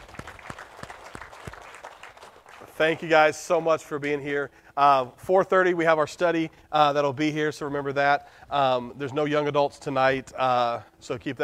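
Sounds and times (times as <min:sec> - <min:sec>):
congregation clapping hands in praise at a church service: 0:00.0 - 0:04.2
speech: 0:02.8 - 0:11.4.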